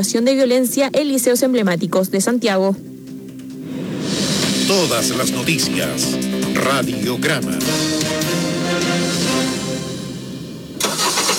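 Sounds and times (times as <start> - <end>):
speech: 0.0 - 3.0, 4.7 - 8.1
car engine cranking, revving and idling: 3.6 - 11.3.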